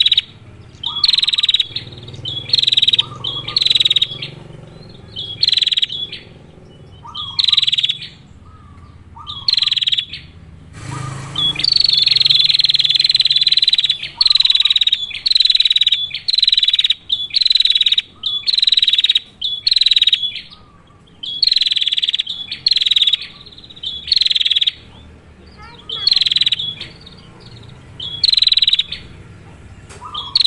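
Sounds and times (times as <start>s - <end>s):
female bar-winged prinia rolling buzzy pulsed trills: 0.0s - 30.4s
brief noise burst: 10.7s - 12.5s.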